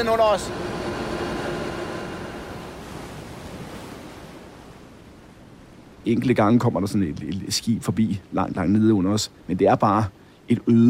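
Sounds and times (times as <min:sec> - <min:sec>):
speech: 0:00.0 - 0:00.7, 0:06.0 - 0:10.8
helicopter engine and rotor roar in flight over the North Sea: 0:00.0 - 0:02.8
faint hum in helicopter cabin: 0:00.0 - 0:10.8.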